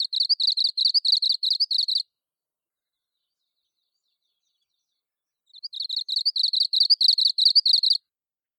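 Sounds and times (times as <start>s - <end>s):
Japanese leaf warbler singing: 0.0s - 2.0s, 5.5s - 8.0s.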